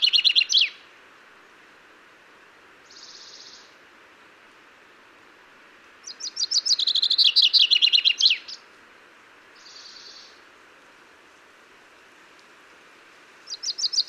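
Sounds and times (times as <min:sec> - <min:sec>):
common chaffinch Fringilla coelebs singing descending trills with a flourish: 0:00.0 - 0:00.9, 0:02.8 - 0:03.8, 0:06.0 - 0:08.7, 0:09.6 - 0:10.4, 0:13.4 - 0:14.0.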